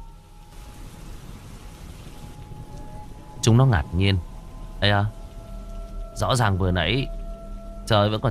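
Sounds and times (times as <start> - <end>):
heavy rain pouring from a night sky: 0.0 - 8.3
speech: 3.5 - 5.2, 6.2 - 7.2, 7.9 - 8.3.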